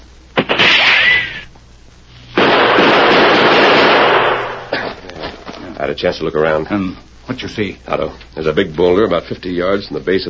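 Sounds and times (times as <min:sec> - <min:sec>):
gunshots in a gunfight near a cliff and boulder: 0:00.4 - 0:01.4, 0:02.4 - 0:04.7
speech: 0:05.9 - 0:10.2.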